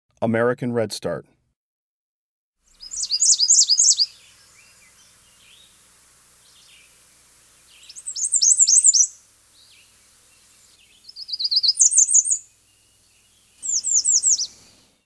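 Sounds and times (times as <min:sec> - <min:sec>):
American Redstart: 0:02.7 - 0:05.8, 0:07.6 - 0:15.0.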